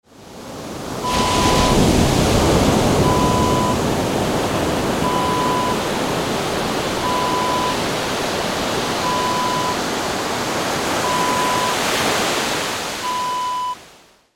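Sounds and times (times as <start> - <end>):
ocean waves: 0.1 - 14.1.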